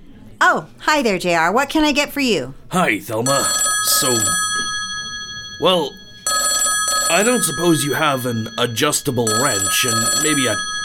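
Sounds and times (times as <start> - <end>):
speech: 0.5 - 4.7, 5.6 - 6.0, 7.1 - 10.7
telephone ringing in a coffee shop with a sustained electronic tone: 3.2 - 10.8.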